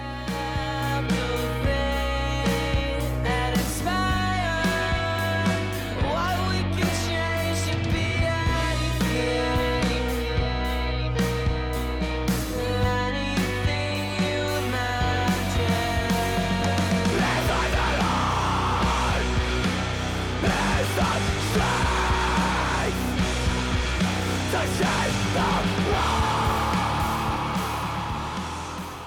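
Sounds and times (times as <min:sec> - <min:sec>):
loud driving indie rock song with dense guitars and steady drums: 0:00.0 - 0:29.0
raw vocals rising into strained screams and yells: 0:20.4 - 0:23.2, 0:24.5 - 0:29.0.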